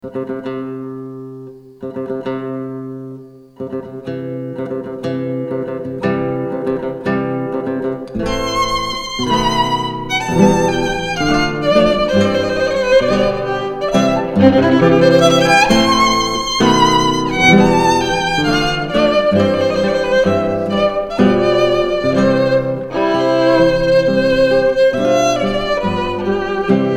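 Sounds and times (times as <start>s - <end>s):
guitar: 0.0s - 26.9s
violin: 8.1s - 26.9s.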